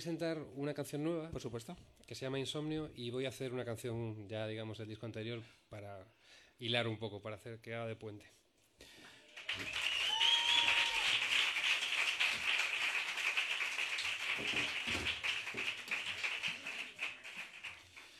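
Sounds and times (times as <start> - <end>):
speech: 0.0 - 9.8, 14.4 - 15.2
crowd applauding: 9.3 - 18.1
whistle: 9.5 - 11.0.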